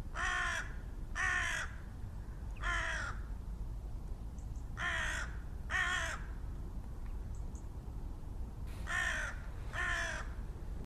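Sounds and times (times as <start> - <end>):
constant low background rumble: 0.0 - 10.8
carrion crow (Corvus corone) cawing: 0.1 - 1.8, 2.6 - 3.3, 4.8 - 6.3, 8.8 - 10.4.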